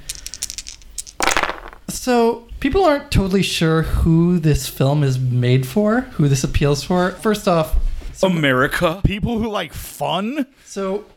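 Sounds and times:
dice rattling and rolling: 0.0 - 1.8
speech: 1.9 - 11.1.

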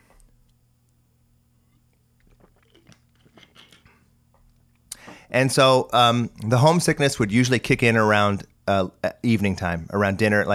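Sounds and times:
low steady hum: 0.0 - 10.5
person sipping a drink: 1.6 - 5.1
swallowing noises: 1.7 - 5.0
speech: 5.3 - 10.5.

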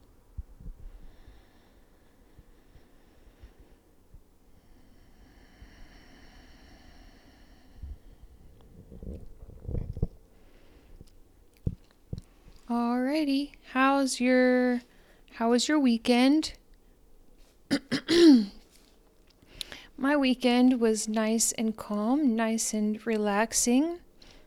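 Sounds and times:
person taking a deep breath: 0.9 - 11.1
speech: 12.7 - 16.6, 20.0 - 24.0.

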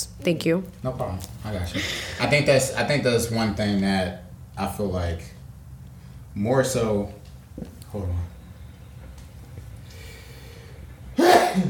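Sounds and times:
speech: 0.0 - 5.4, 6.4 - 8.3
person sneezing: 11.2 - 11.6.

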